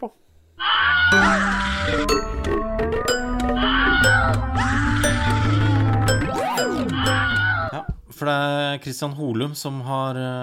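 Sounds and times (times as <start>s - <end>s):
speech: 0.0s - 3.2s, 8.2s - 10.4s
quick swooping pitch slide: 1.1s - 7.8s
ringing dings and chimes: 1.1s - 7.8s
sustained low tones: 1.1s - 7.8s
groaning and wailing sounds: 1.1s - 7.9s
short loud injury-themed podcast jingle: 1.1s - 7.9s.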